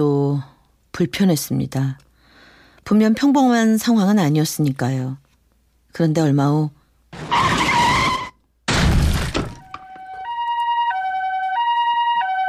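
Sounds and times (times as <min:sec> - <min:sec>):
speech: 0:00.0 - 0:02.1, 0:02.9 - 0:05.2, 0:05.9 - 0:07.4
tires skidding in a traffic accident: 0:07.2 - 0:08.4
crash in a traffic accident: 0:07.2 - 0:09.8
two-tone ambulance siren wailing: 0:09.6 - 0:12.4.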